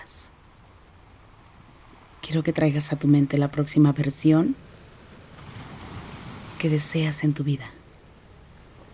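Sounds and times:
ocean waves: 0.0s - 8.9s
speech: 2.3s - 4.7s, 6.6s - 7.8s.

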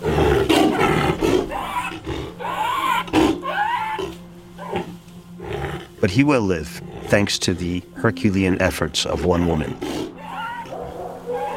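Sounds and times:
hoarse raspy animal roar: 0.0s - 6.0s, 9.6s - 11.5s
speech: 6.1s - 10.0s.

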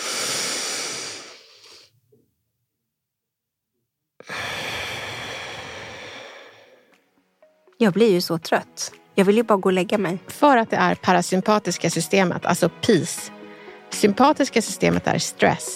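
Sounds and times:
box breathing in through the nose: 0.0s - 2.0s, 4.2s - 6.9s
speech: 7.8s - 15.7s.

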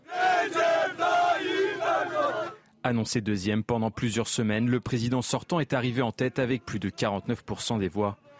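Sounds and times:
large crowd of political supporters chanting in unison after a presidential election round: 0.0s - 2.6s
speech: 2.8s - 8.3s.

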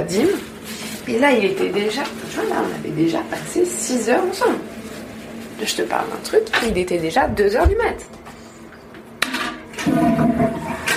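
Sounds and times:
speech: 0.0s - 4.8s, 5.6s - 8.2s
toilet flushing: 9.5s - 10.9s.

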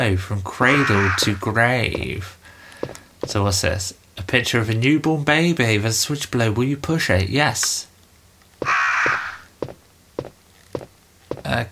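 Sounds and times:
speech: 0.0s - 7.9s, 11.5s - 11.7s
crow cawing in a survival horror video game: 0.6s - 1.4s, 8.6s - 9.5s
dull thuds: 8.6s - 11.6s.

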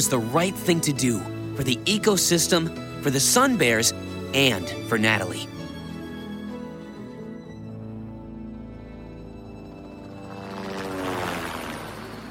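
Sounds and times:
speech: 0.0s - 5.6s
helicopter flying a sun bear to the rainforest: 7.8s - 12.2s.

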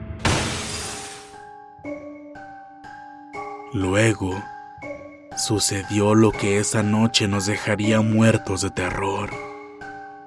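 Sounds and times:
heavy blow shattering glass refrigerator door: 0.2s - 1.4s
speech: 3.7s - 4.5s, 5.4s - 9.5s.

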